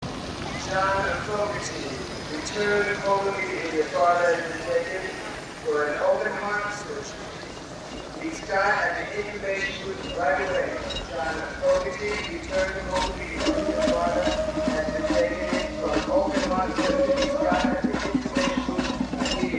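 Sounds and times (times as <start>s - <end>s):
rain: 0.0s - 19.5s
audience noise: 0.3s - 19.5s
person making announcement: 0.4s - 19.5s
crowd chanting: 12.5s - 19.5s.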